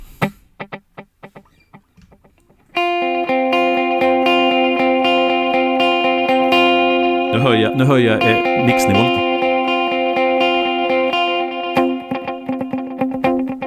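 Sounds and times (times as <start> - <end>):
electric guitar chord with quarter and dotted-eighth delays: 2.7 - 13.6
speech: 7.5 - 9.3.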